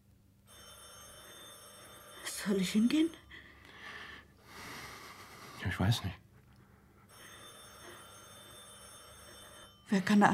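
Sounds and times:
telephone bell ringing in 1930s Germany: 0.4 - 4.2, 7.0 - 10.3
speech: 2.4 - 3.2, 5.6 - 6.2, 9.9 - 10.3.

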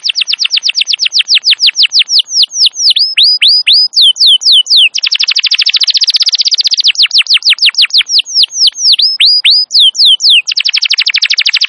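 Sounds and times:
wild Atlantic canary singing whistled notes and a buzzy rolling trill: 0.0 - 11.6.

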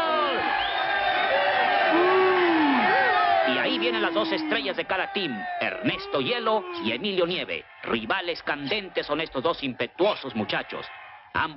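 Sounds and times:
people whooping at a team sports match: 0.0 - 7.4
crowd cheering at a team sports match: 0.0 - 11.5
speech: 4.2 - 11.5.

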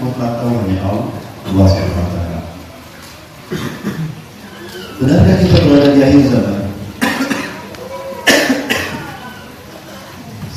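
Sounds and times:
speech: 0.1 - 2.2, 5.0 - 6.6
person with a lingering cough coughing: 7.0 - 9.1.

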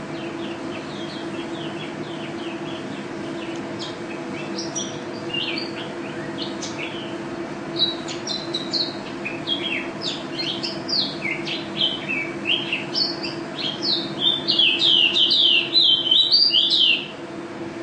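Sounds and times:
constant low hum: 0.0 - 17.8
white-eye contest bird singing with canary phrases: 0.1 - 17.1.

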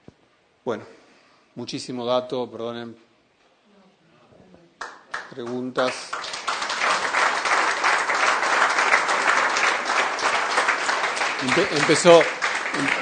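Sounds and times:
speech: 0.7 - 1.0, 1.6 - 3.1, 5.3 - 6.2, 11.4 - 13.0
audience applause after a talk: 5.1 - 13.0.

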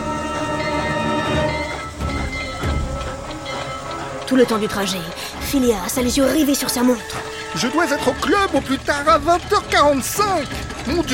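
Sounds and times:
train carriage rumbling and rattling on rails: 0.0 - 11.1
speech: 4.3 - 11.1.

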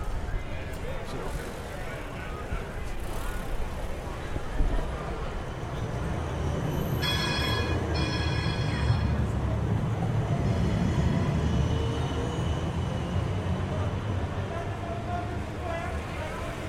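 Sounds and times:
traffic noise with cars: 0.0 - 16.6
trams approaching from both sides on city tram tracks: 0.0 - 16.6
high metallic tram wheel squeal: 6.7 - 9.3.

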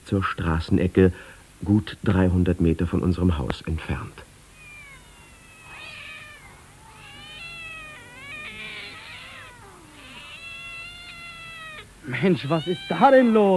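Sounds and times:
speech: 0.1 - 4.3, 12.1 - 13.5
several cats meowing and yowling at a street corner in the evening: 4.5 - 13.5.

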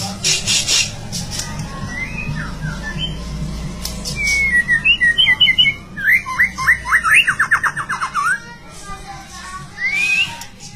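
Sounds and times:
White-rumped shama singing whistled phrases and trills: 1.9 - 3.2, 4.2 - 8.4, 9.8 - 10.5.

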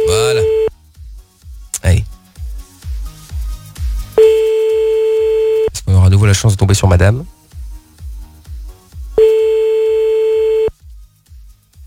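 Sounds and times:
loud steady telephone tone: 0.0 - 0.7, 4.2 - 5.7, 9.2 - 10.7
speech: 6.4 - 7.4.

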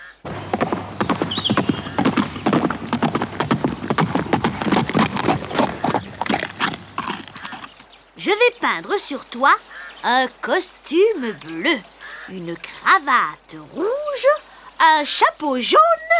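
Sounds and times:
horse hooves clip-clopping, returning from market: 0.3 - 8.0
speech: 8.4 - 16.0.

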